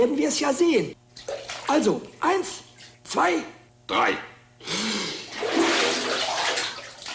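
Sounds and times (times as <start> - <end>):
speech: 0.0 - 5.0
water splashing and gurgling as two people submerge: 5.3 - 7.1.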